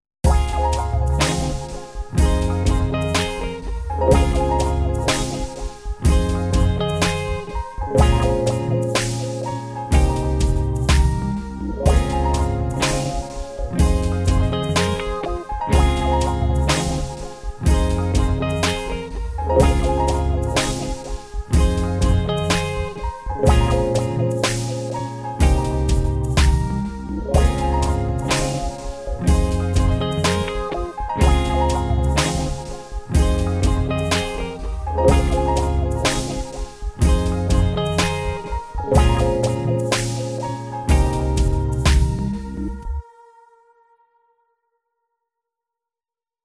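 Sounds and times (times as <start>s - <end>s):
R and B composition: 0.2s - 43.6s.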